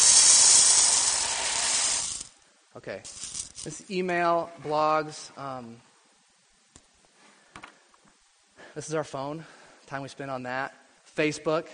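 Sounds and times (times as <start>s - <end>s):
material being poured into a container: 0.0s - 2.3s
speech: 2.8s - 5.9s, 8.8s - 11.7s.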